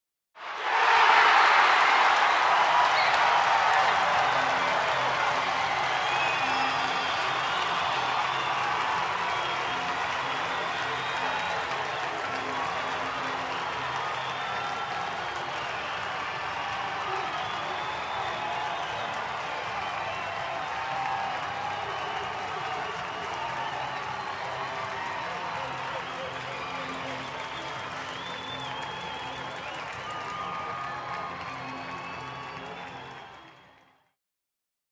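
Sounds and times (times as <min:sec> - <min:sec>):
crowd celebrating and cheering: 0:00.4 - 0:34.2.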